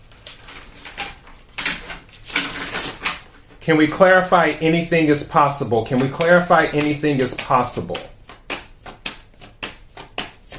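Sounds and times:
deck of cards being shuffled: 2.0 - 3.2, 5.9 - 10.5
speech: 3.6 - 8.2.

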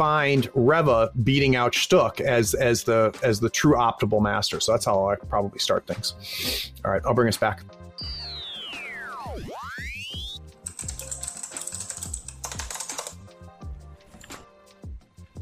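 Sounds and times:
speech: 0.0 - 8.2
swooping electronic tone: 8.0 - 10.4
fast typing on a computer keyboard: 10.6 - 13.2.

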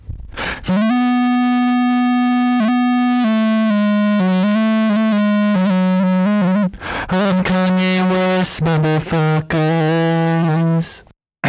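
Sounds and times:
quick breathy burst: 0.3 - 0.8, 6.7 - 7.2
pitch-corrected sung voice with buzzy distortion and fuzz: 0.6 - 11.4.

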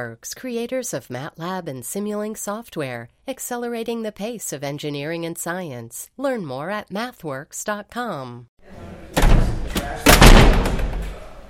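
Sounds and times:
speech: 0.0 - 8.8
heavy statehouse door slamming shut: 9.1 - 11.4.

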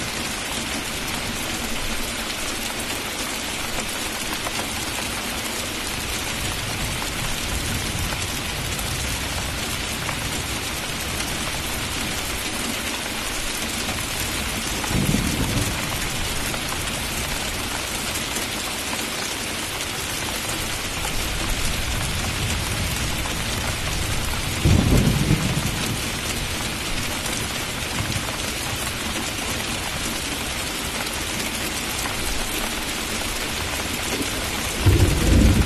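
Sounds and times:
steady rain with pattering drops: 0.0 - 35.6
thunder rumbling: 14.7 - 16.5, 21.7 - 26.6, 34.7 - 35.6.

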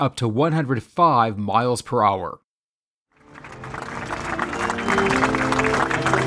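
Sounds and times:
speech: 0.0 - 2.4
large crowd applauding outdoors on the White House lawn: 3.2 - 6.2.

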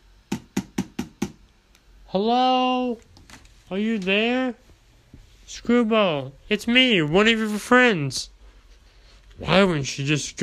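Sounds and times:
woman knocking firmly on a door: 0.3 - 1.4
speech: 2.1 - 3.1, 3.7 - 4.6, 5.5 - 8.3, 9.4 - 10.4.

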